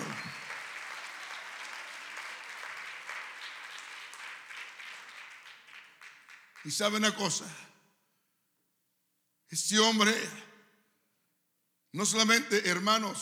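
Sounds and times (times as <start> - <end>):
audience at a sermon clapping: 0.0 - 7.2
speech: 6.6 - 7.7, 9.6 - 10.5, 11.9 - 13.1.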